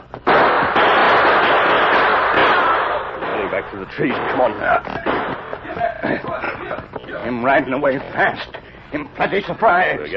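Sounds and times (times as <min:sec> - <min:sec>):
gunshots fired into the ground around a man's feet: 0:00.2 - 0:06.8
speech: 0:03.7 - 0:10.1
laughter: 0:04.4 - 0:10.1.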